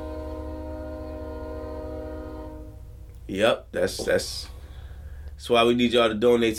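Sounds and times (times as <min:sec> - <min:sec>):
train horn blaring: 0:00.0 - 0:03.0
speech: 0:03.3 - 0:04.6, 0:05.4 - 0:06.5.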